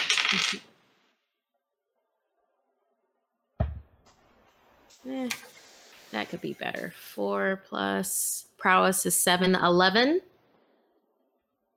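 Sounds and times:
dice rolled on a table during a tabletop role-playing game: 0.0 - 0.7
speech: 0.3 - 0.7, 5.0 - 5.5, 6.1 - 10.3.

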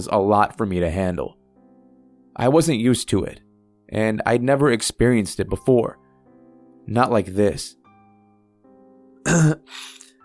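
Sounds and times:
speech: 0.0 - 1.4, 2.4 - 6.0, 6.9 - 7.8, 9.2 - 10.0
gruff cough to clear the throat: 9.2 - 10.2.

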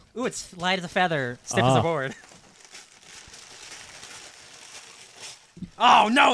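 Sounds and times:
speech: 0.2 - 2.3, 5.8 - 6.3
Christmas wrapping paper crinkling as a gift is torn open: 2.0 - 5.6.

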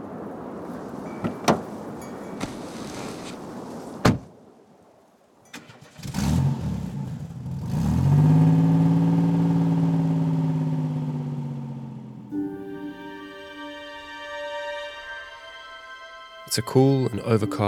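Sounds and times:
car engine cranking and starting in Cape Town: 5.5 - 12.4
speech: 16.6 - 17.6.

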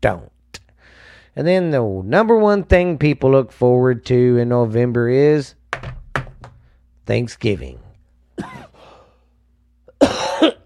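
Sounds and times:
speech: 0.0 - 0.3, 1.4 - 5.6, 7.1 - 7.8, 8.4 - 8.7
harsh throaty coughing: 8.4 - 9.0, 9.9 - 10.6.

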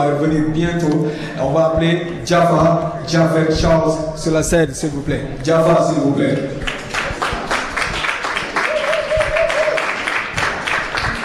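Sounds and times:
speech: 0.0 - 6.7
audience applauding as a musician takes the stage in Toronto: 6.3 - 11.2
sustained tone or cheer: 8.6 - 10.0.

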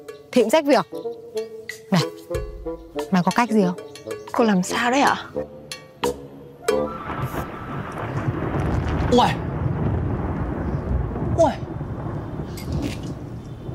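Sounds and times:
speech: 0.4 - 5.5, 9.1 - 9.4, 11.4 - 11.6
deep thunder rumbling: 6.9 - 13.7
faint rain-like hiss: 7.0 - 13.7.

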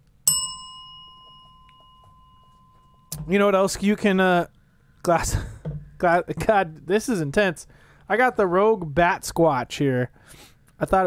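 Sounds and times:
bell strike: 0.3 - 3.8
speech: 3.2 - 11.0.

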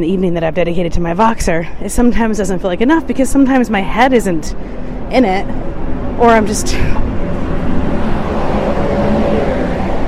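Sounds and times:
speech: 0.0 - 7.1
bus with heavy engine driving past: 2.1 - 10.0.

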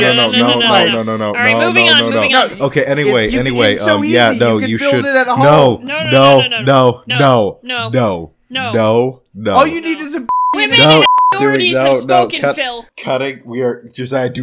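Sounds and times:
speech: 0.0 - 14.4
short steady censor bleeps: 10.3 - 11.8.

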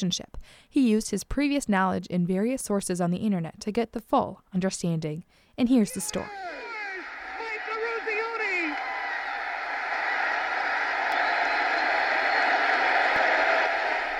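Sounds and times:
speech: 0.0 - 6.7
person shouting above the crowd: 5.9 - 8.8
huge arena crowd cheering at a winning ice hockey goal: 5.9 - 14.1.

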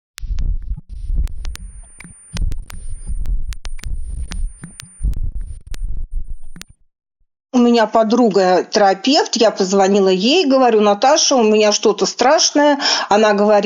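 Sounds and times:
deep rhythmic whooshing throbs of simulated pulsating tinnitus: 0.2 - 6.6
thin steady high-pitched whine of simulated tinnitus: 0.2 - 6.6
speech: 7.6 - 13.6.

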